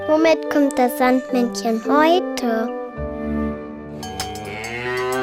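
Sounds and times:
speech: 0.3s - 2.7s
cow mooing: 4.4s - 5.2s.

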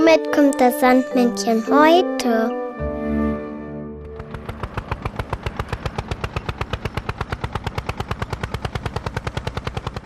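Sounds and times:
speech: 0.1s - 2.6s
tractor engine chugging: 4.0s - 10.0s.

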